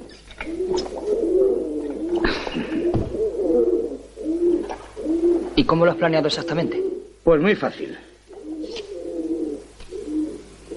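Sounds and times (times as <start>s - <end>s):
pigeon cooing at the window of a prison cell: 0.0s - 7.2s, 8.3s - 10.7s
brief sharp knocks: 2.9s - 3.2s
speech: 5.7s - 8.0s.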